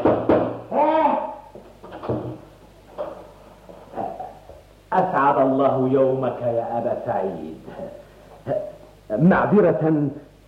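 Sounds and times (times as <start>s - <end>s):
knocking on a wooden door: 0.0s - 0.6s
person calling out: 0.7s - 1.5s
speech: 5.4s - 10.3s.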